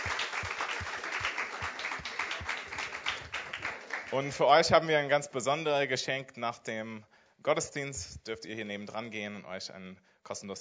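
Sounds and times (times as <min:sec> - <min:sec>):
church service audience applauding first-time visitors: 0:00.0 - 0:04.5
speech: 0:04.1 - 0:10.5.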